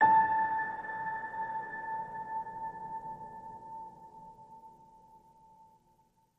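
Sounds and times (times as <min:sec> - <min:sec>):
piano ping on note A: 0:00.0 - 0:04.5.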